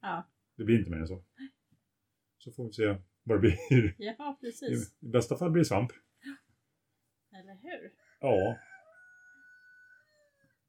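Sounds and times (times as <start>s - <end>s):
speech: 0.0s - 1.3s, 2.4s - 6.4s, 7.3s - 8.7s
laughter: 3.4s - 3.9s
rooster crowing: 8.0s - 10.6s.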